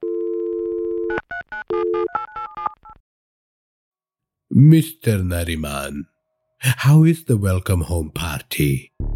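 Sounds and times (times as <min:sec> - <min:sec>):
steady telephone tone: 0:00.0 - 0:03.0
speech: 0:04.6 - 0:09.0.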